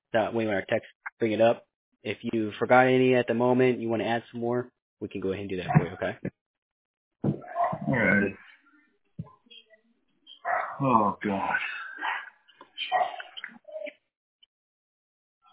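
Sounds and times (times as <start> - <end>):
speech: 0.1 - 6.4, 7.9 - 8.4, 10.8 - 11.8
dogs barking and whimpering: 7.4 - 8.5, 10.3 - 10.8, 12.0 - 13.8.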